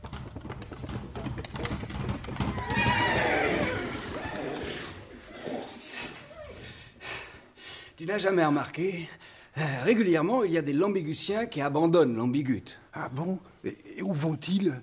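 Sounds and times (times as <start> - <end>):
hooves clip-clopping: 0.0 - 7.4
racehorse whinnying: 2.3 - 6.7
speech: 8.0 - 14.8.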